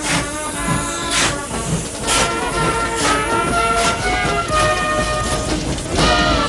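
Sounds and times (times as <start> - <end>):
military train giving a continuous loud rumbling hiss with recurring bursts: 0.0 - 6.4
military train with open wagons pulling away from a station platform: 0.0 - 6.4.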